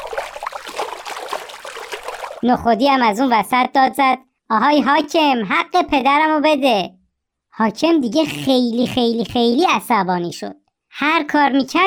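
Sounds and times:
water gushing and pouring: 0.0s - 2.4s
speech: 2.4s - 7.0s, 7.6s - 11.8s.

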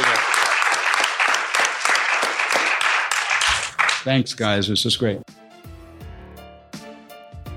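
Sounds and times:
crowd applauding: 0.0s - 4.1s
speech: 4.0s - 5.3s.

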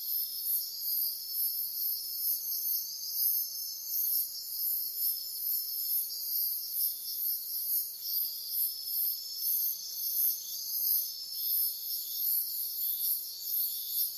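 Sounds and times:
crickets and cicadas singing in a dense night chorus: 0.0s - 14.1s.

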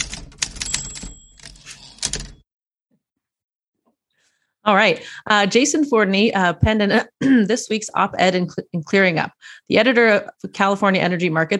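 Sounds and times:
typewriter keystrokes: 0.0s - 2.4s
speech: 4.7s - 11.5s.

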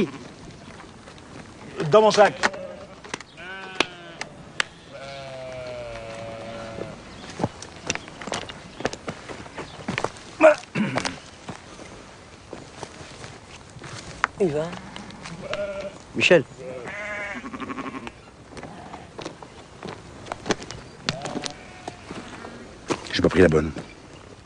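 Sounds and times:
speech: 0.0s - 0.2s, 1.8s - 2.5s, 14.4s - 14.9s, 16.2s - 16.6s, 23.3s - 23.9s
scuffling hooves and footsteps: 0.0s - 24.4s
sheep bleating: 1.7s - 7.0s, 14.7s - 16.0s, 16.6s - 19.2s, 21.1s - 22.6s.

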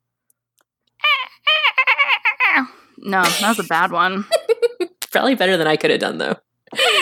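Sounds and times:
person imitating a dolphin call to call dolphins: 1.0s - 2.7s
speech: 2.6s - 4.4s, 5.2s - 6.8s.

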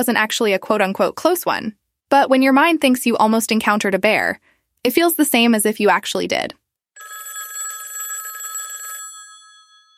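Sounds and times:
speech: 0.0s - 6.6s
motel room telephone bell ringing: 7.0s - 9.9s.

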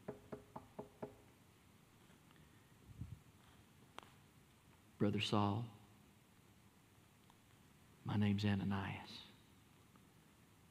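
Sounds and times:
knocking on a wooden door: 0.0s - 1.2s
faint shuffle: 1.8s - 4.9s
speech: 5.0s - 5.8s, 8.2s - 9.3s.

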